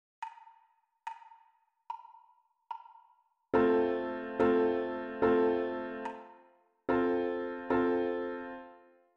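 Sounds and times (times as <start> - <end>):
solo piano rhythm: 3.6 - 8.8.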